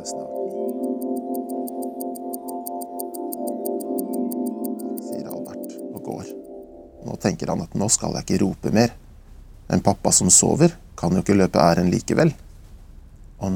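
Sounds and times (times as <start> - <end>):
speech: 0.0 - 1.2, 7.2 - 9.0, 9.7 - 12.4, 13.4 - 13.5
kitchen clock ticking: 0.0 - 6.6.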